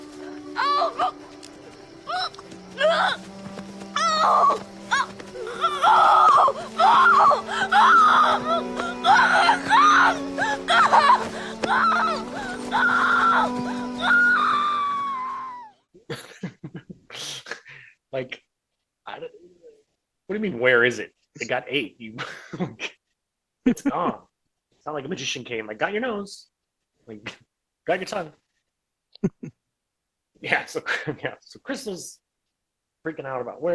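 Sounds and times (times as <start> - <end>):
woman screaming and wailing in pain: 0.5 - 1.2, 2.0 - 3.2, 3.9 - 15.8
speech: 20.4 - 22.9, 23.8 - 28.4, 29.2 - 29.6, 30.4 - 32.2, 33.0 - 33.7.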